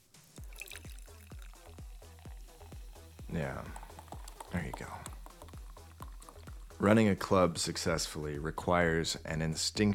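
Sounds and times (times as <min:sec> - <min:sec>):
champagne glugging from a bottle into a glass: 0:00.4 - 0:06.6
speech: 0:03.3 - 0:03.8, 0:04.5 - 0:05.1, 0:06.8 - 0:09.9.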